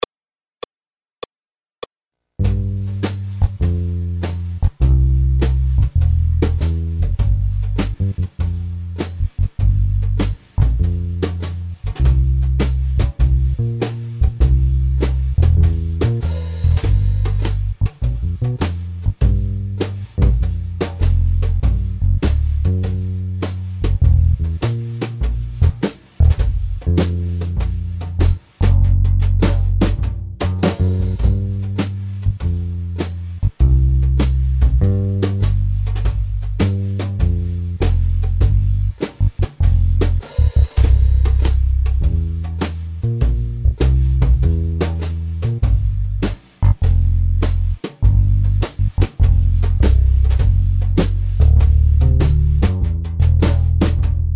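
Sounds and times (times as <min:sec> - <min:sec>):
blues accompaniment alone: 0:02.4 - 0:54.3.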